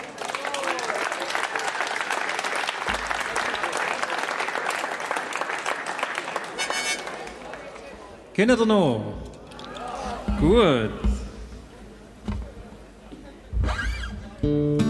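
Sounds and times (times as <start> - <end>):
audience applause: 0.0 - 8.2
speech: 8.4 - 9.3, 10.4 - 11.1, 14.4 - 14.8.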